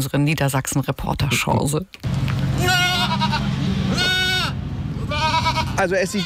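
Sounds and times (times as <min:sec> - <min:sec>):
speech: 0:00.0 - 0:04.0, 0:05.8 - 0:06.2
goats bleating in zoo enclosure: 0:02.5 - 0:06.2.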